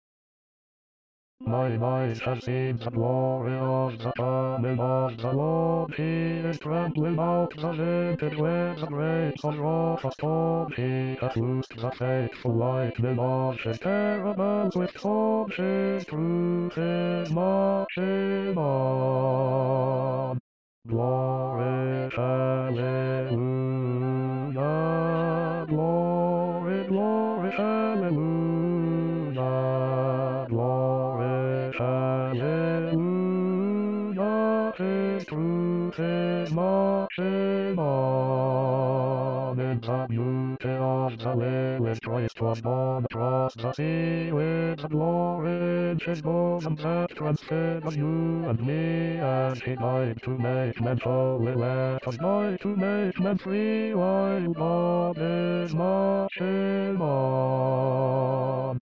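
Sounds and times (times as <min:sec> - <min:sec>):
bass voices singing a hymn: 0:01.5 - 0:58.8.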